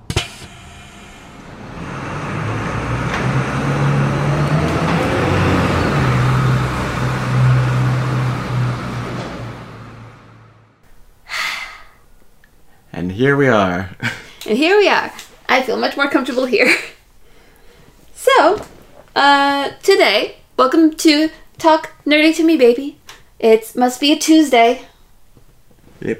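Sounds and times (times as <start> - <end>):
bus engine revving as the bus drives away: 0.0 - 10.8
speech: 13.2 - 16.9, 18.3 - 24.9, 26.0 - 26.1.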